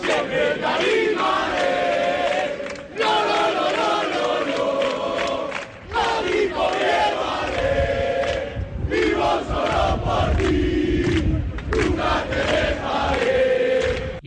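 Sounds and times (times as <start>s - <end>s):
football fans chanting and cheering for team: 0.0s - 14.2s.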